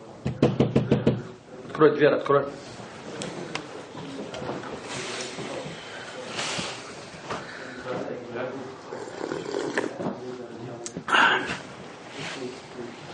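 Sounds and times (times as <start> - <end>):
room noise: 0.0 - 13.1
voices: 0.0 - 13.1
sharp knocks on a door: 0.2 - 1.3.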